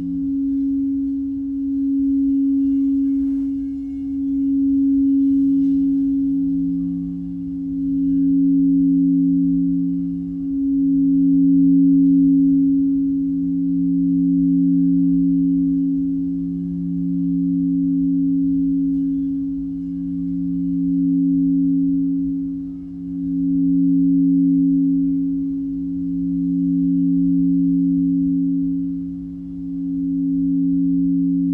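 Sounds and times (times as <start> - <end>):
crystal bowls ringing two low notes: 0.0 - 31.5
faint soft rubbing: 2.3 - 7.5.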